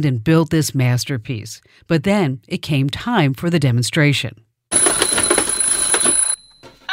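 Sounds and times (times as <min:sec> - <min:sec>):
speech: 0:00.0 - 0:04.5
alarm clock ringing with a metallic clatter: 0:04.7 - 0:06.8.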